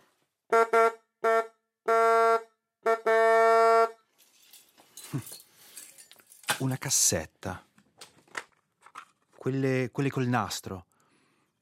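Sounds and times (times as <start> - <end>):
car horn honking: 0.5 - 4.0
speech: 5.1 - 5.4, 6.6 - 7.7, 9.4 - 10.9.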